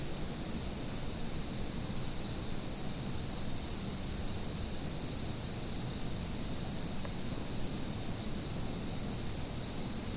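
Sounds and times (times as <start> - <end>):
sharp autumn insect chirps: 0.2 - 0.7, 2.2 - 3.6, 7.8 - 9.2
autumn insects trilling: 0.2 - 4.2, 4.8 - 6.3, 6.9 - 9.7.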